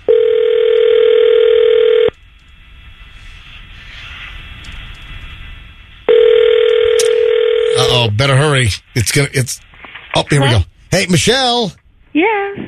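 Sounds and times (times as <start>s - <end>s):
quiet phone line hiss: 0.0s - 2.1s, 6.0s - 9.4s
ringback tone of an outgoing phone call: 0.1s - 2.1s, 6.1s - 7.8s
speech: 8.2s - 12.6s.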